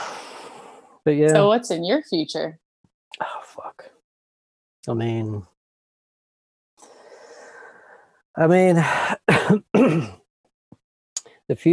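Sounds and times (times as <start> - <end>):
speech: 1.0 - 3.4, 4.8 - 5.5, 8.4 - 10.2, 11.5 - 11.7
harsh coughs right against the microphone: 9.2 - 10.2.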